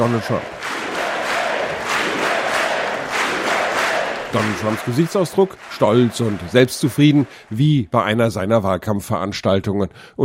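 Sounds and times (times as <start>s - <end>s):
speech: 0.0s - 0.6s, 4.3s - 10.2s
assembled Congress members cheering and shouting: 0.0s - 7.7s.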